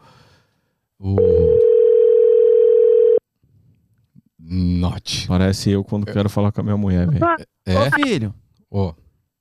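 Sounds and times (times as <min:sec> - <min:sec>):
telephone dial tone during a call: 0:01.2 - 0:03.2
speech: 0:05.3 - 0:09.0.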